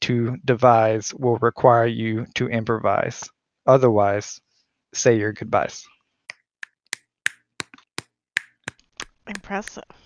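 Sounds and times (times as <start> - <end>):
speech: 0.1 - 5.9, 9.3 - 10.0
crisp finger snaps: 6.3 - 7.8.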